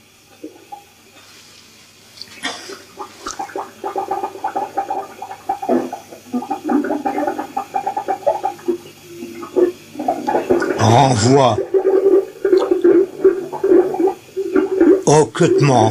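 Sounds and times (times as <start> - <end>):
water gurgling and bubbling in city sewers: 0.0 - 1.2, 2.0 - 15.9
speech: 10.9 - 11.7, 15.1 - 15.9.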